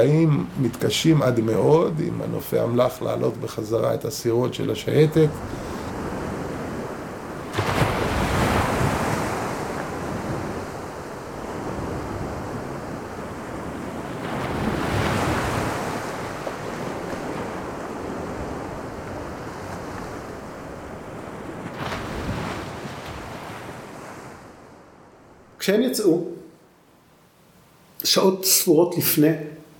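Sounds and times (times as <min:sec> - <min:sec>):
speech: 0:00.0 - 0:05.7, 0:28.2 - 0:29.5
heavy sea waves crashing off Algiers: 0:00.0 - 0:26.2
northerly mistral wind buffeting the microphone: 0:05.3 - 0:25.1.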